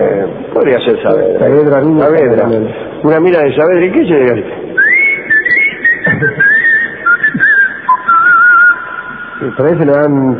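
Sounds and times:
speech: 0:00.0 - 0:04.6, 0:06.2 - 0:06.4, 0:09.4 - 0:10.3
person whistling a long wavering high whistle: 0:04.8 - 0:09.5.

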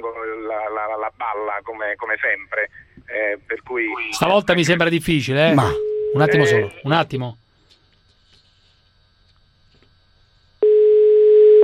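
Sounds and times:
speech: 0:00.1 - 0:07.4
telephone ringback tone: 0:05.7 - 0:06.6, 0:10.6 - 0:11.6.

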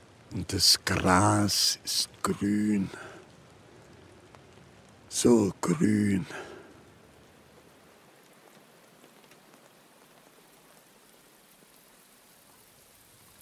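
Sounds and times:
steady rain: 0:00.0 - 0:13.3
speech: 0:00.3 - 0:03.0, 0:05.1 - 0:06.5.

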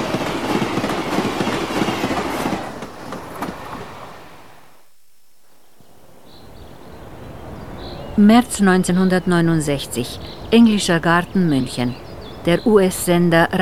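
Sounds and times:
train crossing the border between East and West rumbling: 0:00.0 - 0:04.3
speech: 0:08.2 - 0:13.5.

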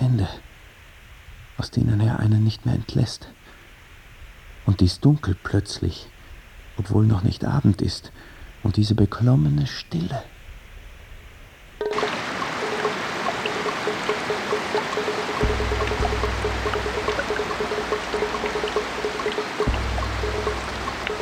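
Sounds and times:
speech: 0:01.6 - 0:03.4, 0:04.7 - 0:06.1, 0:06.8 - 0:10.3
heavy tropical rain drumming on leaves: 0:11.8 - 0:21.2
low rumble: 0:15.4 - 0:21.2.

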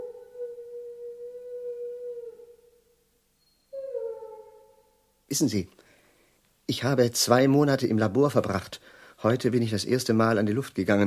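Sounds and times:
dog howling in sultry muggy weather: 0:00.0 - 0:02.6, 0:03.8 - 0:04.7
speech: 0:05.3 - 0:05.8, 0:06.7 - 0:11.0.

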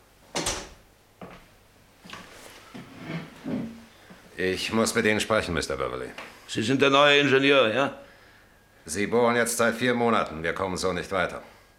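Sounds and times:
chair being pulled up and set in place: 0:02.1 - 0:03.9
speech: 0:04.4 - 0:08.0, 0:08.9 - 0:11.5.

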